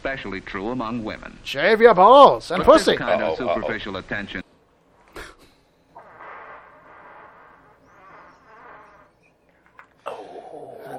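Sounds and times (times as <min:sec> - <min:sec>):
speech: 0:00.0 - 0:04.4
long drawn-out buzzing fart: 0:05.9 - 0:09.8.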